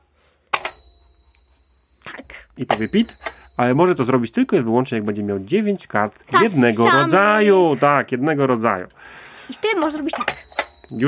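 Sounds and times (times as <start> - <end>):
small metal game bell struck: 0.5 - 4.6, 10.3 - 11.0
speech: 2.6 - 11.0.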